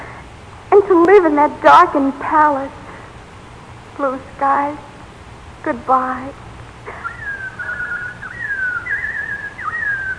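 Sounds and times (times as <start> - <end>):
soft hiss: 0.0 - 10.1
speech: 1.0 - 2.8, 4.0 - 4.9, 5.6 - 6.4
robin singing on a spring day: 6.9 - 10.1.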